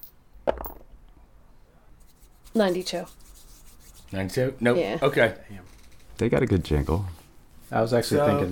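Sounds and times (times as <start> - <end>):
dice clattering onto a hard table: 0.4 - 0.9
speech: 2.6 - 3.2, 4.1 - 8.5.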